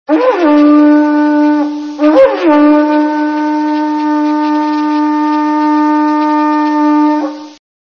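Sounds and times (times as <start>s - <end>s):
seashell horn: 0.1s - 7.6s.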